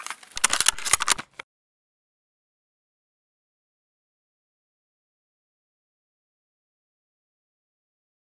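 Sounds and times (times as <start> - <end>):
SV98 rifle misfire: 0.0 - 1.4.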